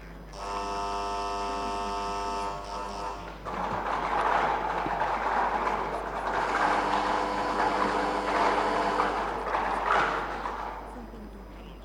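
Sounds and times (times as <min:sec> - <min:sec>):
motorized lottery draw machine humming with a steady electric whine: 0:00.0 - 0:11.8
lottery balls tumbling and rattling inside a draw machine: 0:03.2 - 0:11.8.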